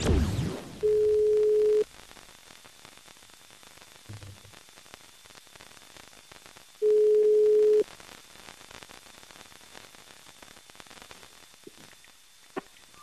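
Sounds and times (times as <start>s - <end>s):
faint telephone line hiss: 0.2s - 13.0s
telephone ringback tone: 0.8s - 1.8s, 6.8s - 7.8s.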